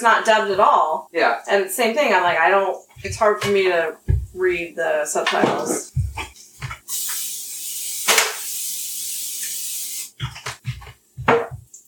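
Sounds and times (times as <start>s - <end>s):
speech: 0.0s - 6.3s
spray hissing onto baked goods: 6.9s - 10.2s.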